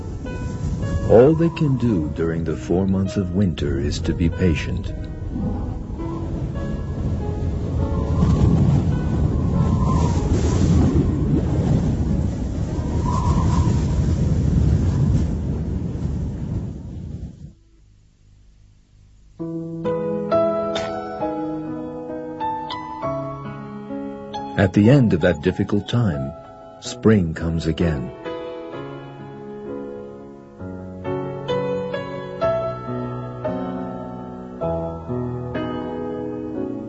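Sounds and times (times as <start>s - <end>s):
music: 0.0s - 11.6s, 19.4s - 36.8s
freezing wind blowing over a penguin colony: 0.0s - 17.6s
speech: 1.1s - 5.7s, 24.6s - 28.2s.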